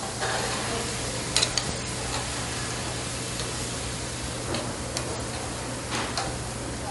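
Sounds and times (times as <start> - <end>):
frying hiss in a busy kitchen: 0.0 - 6.8
low electrical hum: 0.0 - 6.8
utensils clinking while stirred and handled: 0.1 - 2.3.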